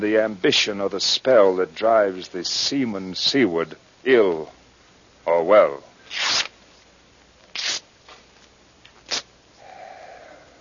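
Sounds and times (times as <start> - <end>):
speech: 0.0 - 4.6, 5.2 - 6.4
soft steady hiss: 0.0 - 10.6
letter paper burning, crackling and rustling: 6.1 - 6.5, 7.5 - 7.8.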